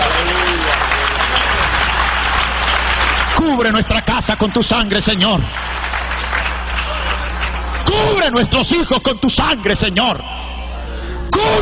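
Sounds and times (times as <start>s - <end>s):
audience applauding: 0.0s - 8.3s
speech: 3.4s - 6.0s, 7.9s - 10.5s, 11.3s - 11.6s.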